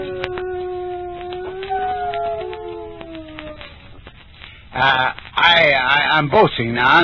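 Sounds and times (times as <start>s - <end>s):
dog howling in imitation of a coyote: 0.0s - 4.1s
rough burst of sound: 0.7s - 6.0s
speech: 4.8s - 7.0s.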